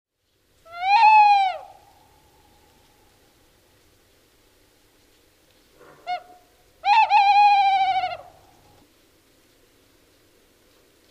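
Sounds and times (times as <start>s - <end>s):
tawny owl hooting: 0.7s - 1.9s, 6.0s - 8.5s.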